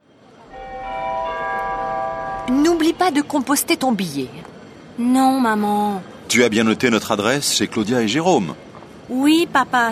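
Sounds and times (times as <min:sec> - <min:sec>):
low rumble in a train station: 0:00.5 - 0:03.5
ringing bell-like tone in a train station: 0:00.5 - 0:03.9
speech: 0:02.5 - 0:09.8.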